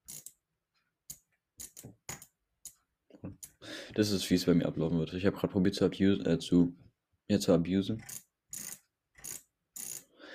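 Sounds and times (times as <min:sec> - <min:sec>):
computer mouse scroll wheel being spun with plastic ratcheting: 0:00.0 - 0:00.4, 0:01.1 - 0:02.8, 0:08.0 - 0:10.1
speech: 0:03.9 - 0:08.2.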